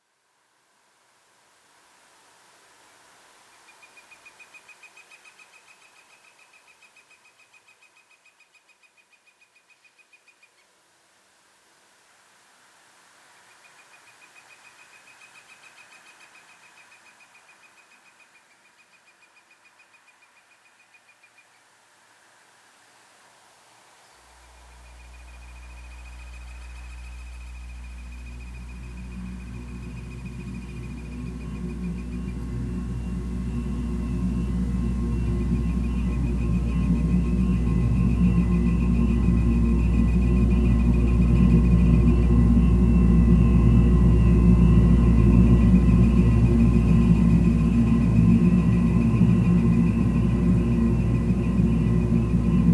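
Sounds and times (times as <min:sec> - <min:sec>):
drone whirling at the waterline: 0:24.5 - 0:52.7.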